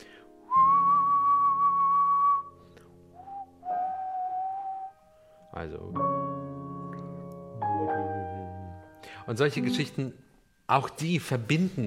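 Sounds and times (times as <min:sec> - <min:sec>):
person whistling a short tune: 0:00.5 - 0:05.0
speech: 0:05.6 - 0:06.3, 0:09.3 - 0:11.8.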